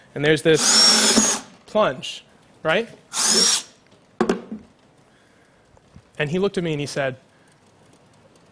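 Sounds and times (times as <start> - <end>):
speech: 0.2 - 3.5, 6.2 - 7.3
power drill drilling through a wall: 0.6 - 1.5, 3.1 - 3.8.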